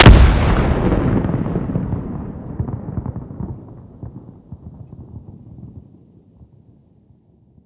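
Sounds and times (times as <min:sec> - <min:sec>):
far distant cache explosion at an emplacement: 0:00.0 - 0:05.5.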